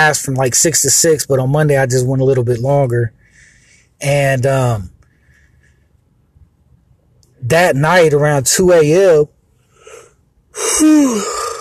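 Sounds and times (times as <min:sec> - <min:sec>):
speech: 0:00.0 - 0:03.2, 0:04.0 - 0:04.9, 0:07.4 - 0:09.4, 0:10.6 - 0:11.3
person yawning: 0:09.9 - 0:11.6.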